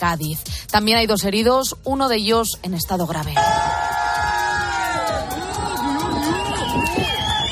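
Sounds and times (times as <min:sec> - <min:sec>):
speech: 0:00.0 - 0:03.8
crowd on land cheering at the port of Barbate: 0:03.4 - 0:07.4.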